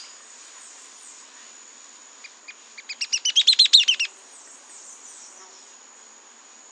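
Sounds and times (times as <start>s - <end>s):
thin continuous insect whine: 0.0s - 6.7s
Mouse-colored tyrannulet Phaeomyias murina wagae giving sharp chattering notes: 2.8s - 4.1s.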